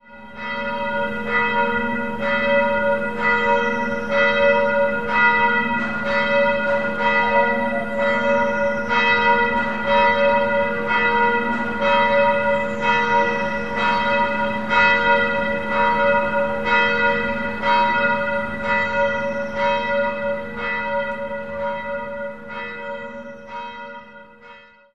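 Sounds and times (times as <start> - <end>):
church bell ringing: 0.0 - 24.9.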